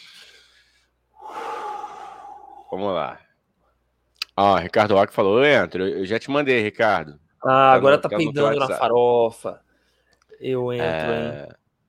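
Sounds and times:
deep-breath sound effect: 0.0 - 2.8, 9.7 - 10.2
speech: 2.7 - 3.3, 4.4 - 9.6, 10.4 - 11.6.

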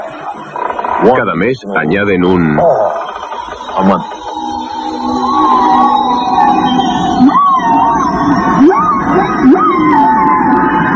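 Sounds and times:
speech: 1.0 - 3.1, 3.8 - 4.1
whale song: 2.6 - 10.9.

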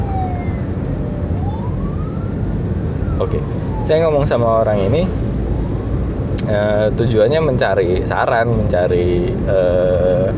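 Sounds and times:
ambulance siren wailing: 0.0 - 6.8
street traffic rumble: 0.0 - 10.3
speech: 3.2 - 5.2, 6.5 - 10.3.

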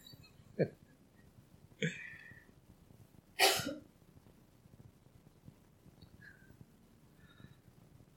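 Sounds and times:
person coughing: 3.4 - 3.8.

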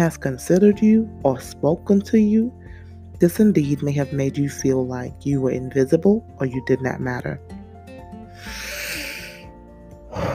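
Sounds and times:
speech: 0.0 - 2.6, 3.2 - 7.5
music with sustained tones: 0.0 - 10.3
deep breath in: 8.3 - 9.5.

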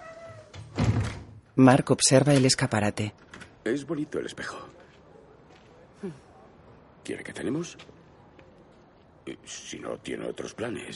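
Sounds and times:
door shutting: 0.2 - 1.4
speech: 1.6 - 4.8, 6.0 - 6.2, 7.0 - 8.0, 9.3 - 10.9.

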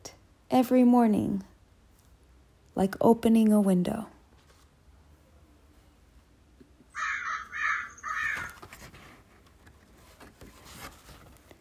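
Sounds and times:
faint outdoor background with sounds: 0.0 - 11.6
speech: 0.5 - 1.5, 2.8 - 4.1
crows cawing outside: 6.9 - 8.7.

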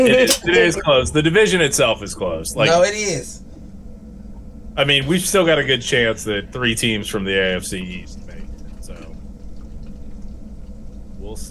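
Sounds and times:
speech: 0.0 - 3.4, 4.8 - 8.3, 11.2 - 11.4
beer pouring from a can or bottle into a glass: 7.7 - 11.4.

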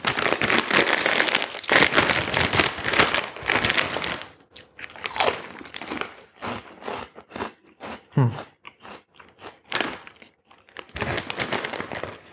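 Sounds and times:
crunching and chewing gluten-free potato snack crisps: 0.0 - 12.3
person murmuring: 8.1 - 8.5
speech: 8.2 - 8.5.

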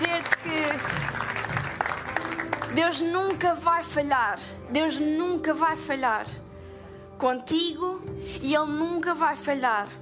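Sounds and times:
audience applause from many hands: 0.0 - 2.8
speech: 2.7 - 6.4, 7.2 - 10.0.

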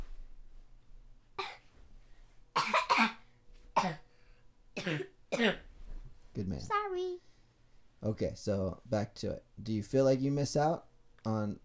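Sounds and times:
person coughing: 1.4 - 1.7, 2.6 - 4.1, 4.8 - 5.7
speech: 6.6 - 7.3, 8.0 - 11.6.

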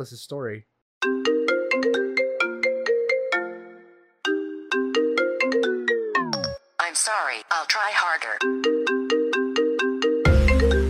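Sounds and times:
speech: 0.0 - 1.6, 7.0 - 9.2
phone ringtone for an incoming call with a chiming electronic melody: 1.0 - 6.6, 8.4 - 10.8.

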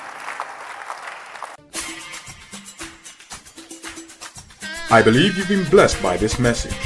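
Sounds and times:
audience applauding: 0.0 - 1.6
rhythmic claps: 0.0 - 4.8
speech: 4.9 - 6.8.

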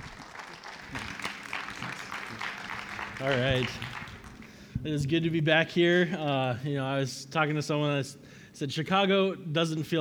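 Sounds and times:
congregation applauding: 0.0 - 4.5
speech: 3.2 - 3.9, 4.8 - 9.9.

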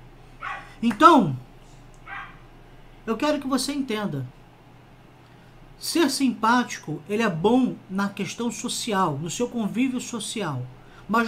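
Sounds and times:
dog yelp sliding into a whine: 0.4 - 0.8, 2.0 - 2.5
speech: 0.8 - 1.5, 3.1 - 4.4, 5.8 - 11.2.

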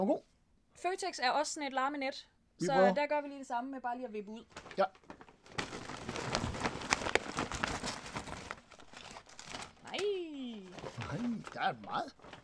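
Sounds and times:
speech: 0.0 - 5.1, 10.0 - 10.3, 11.0 - 12.4
advertising leaflets rustling as tipped out of a bag: 4.5 - 12.4.

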